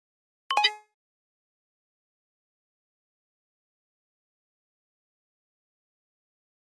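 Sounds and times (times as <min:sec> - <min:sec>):
flash beep: 0:00.5 - 0:00.9.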